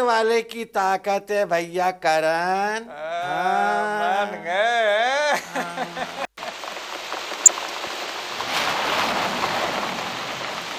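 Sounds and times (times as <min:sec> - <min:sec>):
speech: 0:00.0 - 0:03.7
laughter: 0:02.9 - 0:06.3
heavy rain pattering across a surface: 0:05.3 - 0:10.7.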